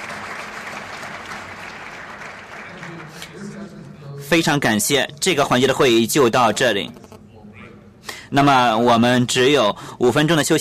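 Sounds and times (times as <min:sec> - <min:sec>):
audience at a conference session applauding: 0:00.0 - 0:03.5
speech: 0:04.3 - 0:07.0, 0:08.3 - 0:10.6.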